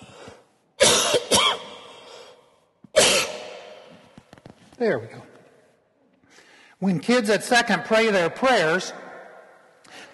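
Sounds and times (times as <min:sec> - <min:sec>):
loud harsh coughing: 0:00.8 - 0:01.9, 0:03.0 - 0:03.6
speech: 0:04.8 - 0:05.3, 0:06.8 - 0:09.0.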